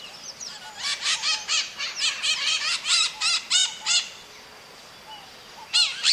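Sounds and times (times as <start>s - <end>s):
parrot calling with harsh screechy notes and squawks: 0.8s - 4.1s, 5.8s - 6.1s.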